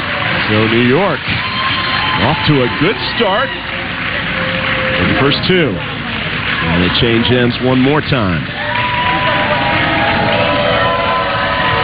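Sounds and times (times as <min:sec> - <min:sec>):
large crowd cheering and roaring: 0:00.0 - 0:11.8
speech: 0:00.5 - 0:01.5, 0:02.2 - 0:03.7, 0:04.4 - 0:05.9, 0:06.6 - 0:08.6
shouts and whoops: 0:01.2 - 0:03.8, 0:08.6 - 0:11.8.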